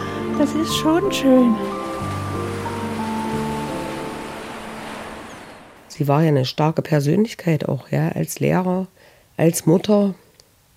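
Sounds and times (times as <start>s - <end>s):
sea waves washing against the Baltic Sea shore: 0.0s - 6.4s
soft sustained musical tones: 0.0s - 6.4s
speech: 0.4s - 1.8s, 6.0s - 10.2s.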